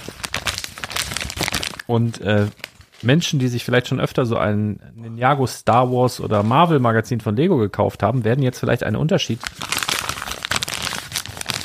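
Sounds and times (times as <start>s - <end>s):
paper bag packaging crinkling: 0.0s - 3.1s, 9.3s - 11.6s
speech: 1.9s - 9.7s.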